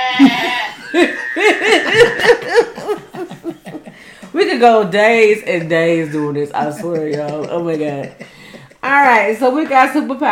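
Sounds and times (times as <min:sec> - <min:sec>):
person doing a goat bleating impression: 0:00.0 - 0:01.4
people laughing: 0:00.2 - 0:09.6
speech: 0:04.6 - 0:08.3, 0:08.9 - 0:10.2.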